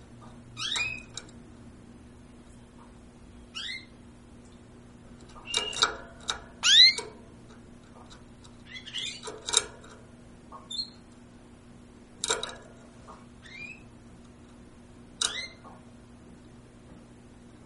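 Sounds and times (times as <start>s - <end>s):
low constant hum: 0.0s - 17.6s
bird giving harsh descending squeaky calls: 0.6s - 1.1s, 3.5s - 3.9s, 6.6s - 7.0s, 8.6s - 9.2s, 10.7s - 11.0s, 13.4s - 13.9s.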